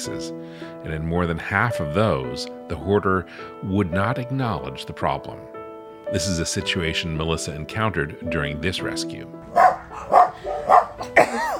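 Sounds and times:
speech: 0:00.0 - 0:11.5
dog barking during an animal rescue at a hoarder's home: 0:09.5 - 0:11.2.

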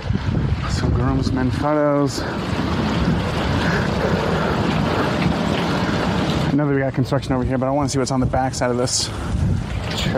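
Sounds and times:
strong outdoor wind buffeting the microphone: 0:00.0 - 0:10.1
speech: 0:01.0 - 0:02.9, 0:06.5 - 0:10.1.

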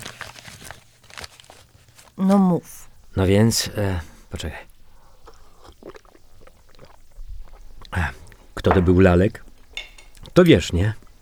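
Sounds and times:
papers shuffled and pushed aside: 0:00.0 - 0:02.5
speech: 0:02.2 - 0:04.7, 0:08.6 - 0:09.5, 0:10.4 - 0:11.0.

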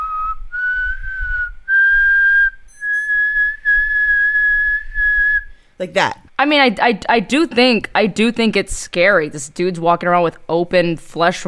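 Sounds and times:
eerie human whistling imitating a legendary ghost: 0:00.0 - 0:05.6
speech: 0:05.8 - 0:11.4.

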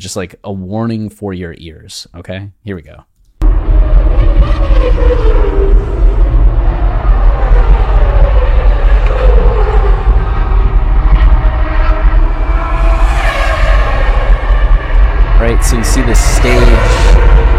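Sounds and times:
speech: 0:00.0 - 0:03.1, 0:04.4 - 0:05.9, 0:15.4 - 0:17.5
car engines revving: 0:03.4 - 0:17.5
vehicles roaring by: 0:03.4 - 0:17.5.

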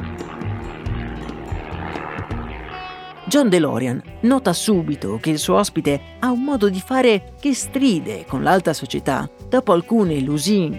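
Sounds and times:
propeller airplane engine droning as aircraft flies overhead: 0:00.0 - 0:05.0
speech: 0:03.3 - 0:10.7.

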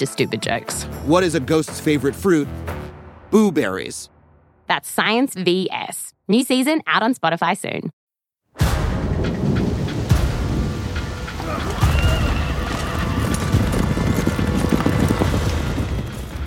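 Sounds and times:
speech: 0:00.0 - 0:04.1, 0:04.7 - 0:08.0
low rumbles of thunder: 0:08.6 - 0:16.4
loud pouring rain: 0:09.0 - 0:16.2
heavy hoofbeats of a horse galloping: 0:11.2 - 0:16.4
horse whinnying: 0:11.4 - 0:15.7.

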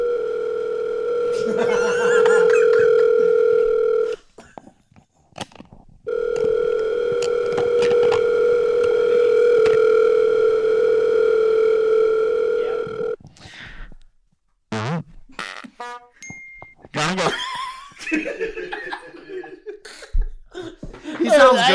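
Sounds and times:
telephone line tone from a phone call being placed: 0:00.0 - 0:04.2, 0:06.1 - 0:13.2
laughter: 0:01.3 - 0:03.3, 0:17.1 - 0:21.7.

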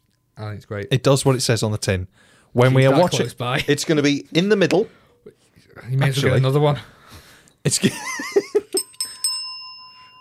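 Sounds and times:
speech: 0:00.4 - 0:07.0, 0:07.6 - 0:08.4
small bell struck: 0:08.0 - 0:10.1.

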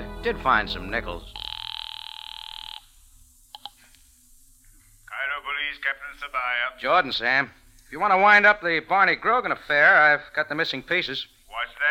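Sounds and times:
speech: 0:00.2 - 0:01.4, 0:05.8 - 0:11.8
telephone bell ringing at a phone booth: 0:01.3 - 0:02.9
faint clicks: 0:03.5 - 0:04.9.

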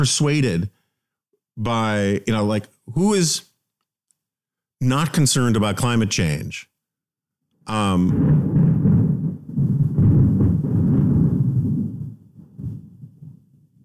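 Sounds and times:
speech: 0:00.0 - 0:00.8, 0:01.6 - 0:03.5, 0:04.8 - 0:06.7, 0:07.7 - 0:08.5
thunder rumbling: 0:07.8 - 0:13.8.

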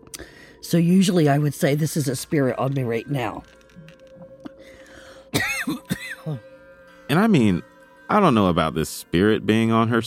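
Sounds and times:
speech: 0:00.6 - 0:03.6, 0:06.3 - 0:06.5, 0:07.1 - 0:10.0
woman clearing throat: 0:05.3 - 0:06.4
woman coughing: 0:05.3 - 0:06.4.

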